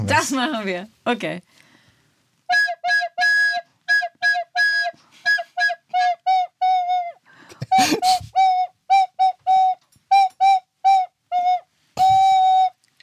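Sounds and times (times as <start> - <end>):
speech: 0.0 - 1.6
breathy whistle-like blown tone playing a Christmas melody: 2.5 - 7.2, 8.4 - 12.8.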